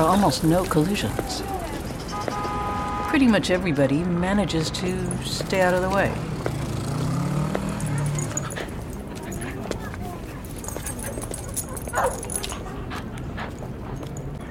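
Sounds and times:
speech: 0.0 - 1.7, 3.1 - 6.3
traffic-like clatter on a busy street: 0.0 - 14.4
dogs barking and whimpering at passing cars: 7.4 - 14.4.

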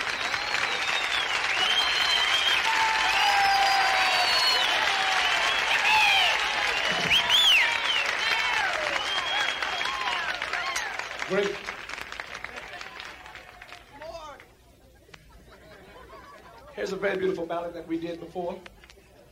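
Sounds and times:
high whistle-like tones: 0.0 - 4.8, 5.4 - 10.1
sustained audience applause: 0.0 - 14.6
laughter: 14.6 - 17.3, 18.6 - 19.3
speech: 16.9 - 18.7.

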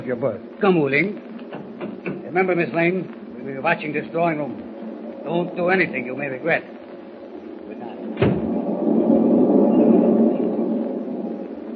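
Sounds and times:
speech: 0.0 - 1.3, 2.3 - 4.6, 5.2 - 6.8
train rolling along the rails: 3.8 - 11.7.

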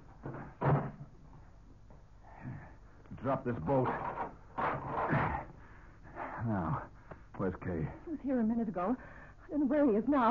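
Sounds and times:
door swinging shut with a solid thump: 0.3 - 1.0
speech: 3.2 - 4.1, 6.4 - 10.2.

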